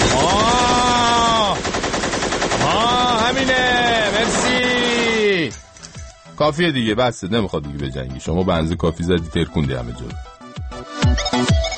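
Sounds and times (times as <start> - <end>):
voice imitating machine gun fire with whining tone and rattle: 0.0 - 1.8, 2.5 - 5.4
speech: 6.4 - 11.7.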